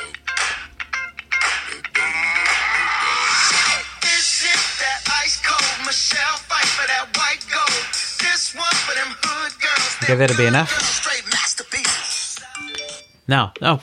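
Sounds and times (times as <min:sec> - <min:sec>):
pop song through a small tinny phone speaker: 0:00.0 - 0:13.2
speech: 0:10.1 - 0:11.0, 0:13.3 - 0:13.8
bright electronic phone notification chimes: 0:12.6 - 0:13.2.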